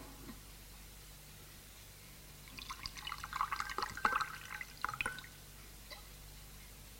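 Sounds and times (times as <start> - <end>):
coffee being poured: 2.4 - 5.5.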